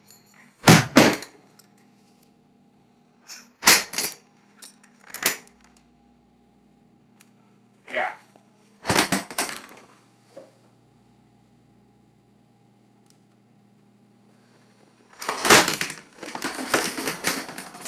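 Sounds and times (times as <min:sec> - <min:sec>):
laptop dropping and clattering on hard floor: 0:00.7 - 0:01.4, 0:08.9 - 0:09.9, 0:15.2 - 0:17.8.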